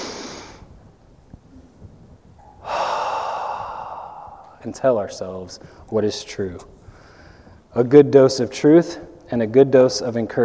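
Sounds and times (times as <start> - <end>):
deep breath taken aloud by a preacher during a church sermon: 2.5 - 4.7, 5.6 - 5.9, 6.8 - 7.7
speech: 4.6 - 6.8, 7.7 - 10.4.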